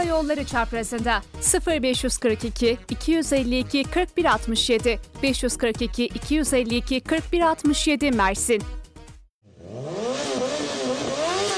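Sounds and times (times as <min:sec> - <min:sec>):
speech: 0:00.1 - 0:08.8
motorcycle engine revving: 0:09.4 - 0:11.5.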